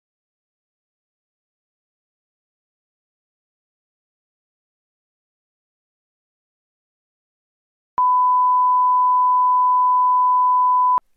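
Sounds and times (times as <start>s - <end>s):
single steady electronic beep: 8.0s - 11.0s.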